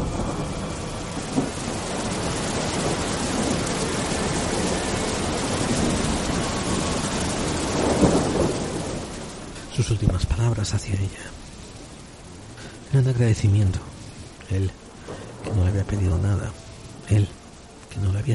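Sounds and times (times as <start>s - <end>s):
deep thunder rumbles: 0.0s - 18.3s
steady heavy rain hissing in a thunderstorm: 0.0s - 18.3s
speech: 10.5s - 11.5s, 12.9s - 13.9s, 14.5s - 14.8s, 15.6s - 17.4s, 18.0s - 18.3s.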